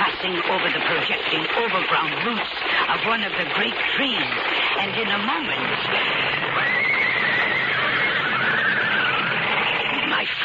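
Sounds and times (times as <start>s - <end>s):
dense noisy background: 0.0s - 10.4s
speech: 0.2s - 6.9s
panicked coach horses neighing and whinnying in alarm: 6.1s - 10.1s.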